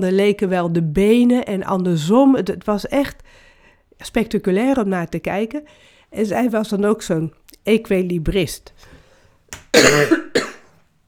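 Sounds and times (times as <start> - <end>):
speech: 0.0 - 8.9, 9.7 - 10.3
person with a cold coughing: 9.7 - 10.7.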